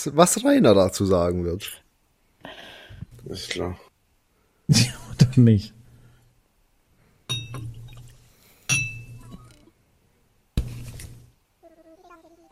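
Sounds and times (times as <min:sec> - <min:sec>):
speech: 0:00.0 - 0:01.8, 0:03.2 - 0:03.8, 0:04.7 - 0:05.8
glasses clinking in a toast: 0:07.3 - 0:09.6.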